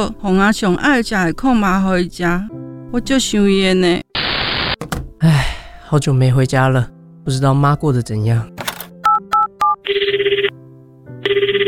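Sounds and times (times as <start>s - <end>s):
speech: 0.0s - 4.0s, 5.2s - 8.6s
electronic beeps of a phone number being dialed: 9.0s - 10.5s, 11.2s - 11.6s
telephone ringing in loud trilling bursts: 9.0s - 10.6s, 11.2s - 11.6s.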